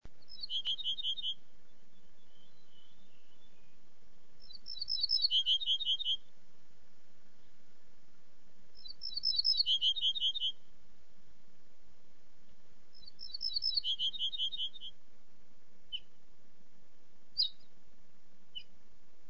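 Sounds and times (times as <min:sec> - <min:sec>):
ortolan bunting singing: 0:00.2 - 0:06.3, 0:08.8 - 0:10.7, 0:12.9 - 0:15.0, 0:17.3 - 0:17.7, 0:18.5 - 0:18.7.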